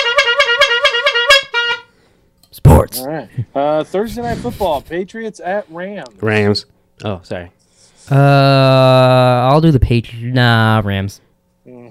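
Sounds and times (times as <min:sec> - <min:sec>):
loud horn honking: 0:00.0 - 0:02.0
speech: 0:02.9 - 0:11.2.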